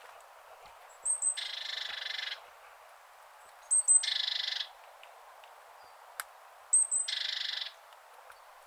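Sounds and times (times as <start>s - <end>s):
great tit Parus major churring calls with buzzy rattle: 1.0s - 2.4s, 3.7s - 4.8s, 6.8s - 7.8s.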